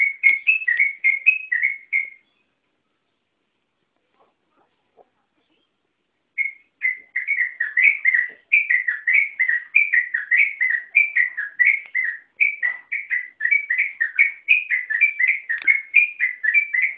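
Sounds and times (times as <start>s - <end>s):
yellow-vented bulbul song: 0.0s - 3.3s, 5.4s - 16.9s.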